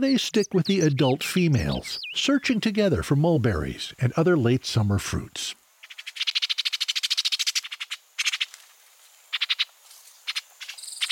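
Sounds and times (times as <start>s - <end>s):
speech: 0.0s - 5.6s
orchard oriole chattering calls: 0.4s - 2.6s, 5.8s - 8.5s, 9.3s - 9.7s, 10.3s - 11.1s.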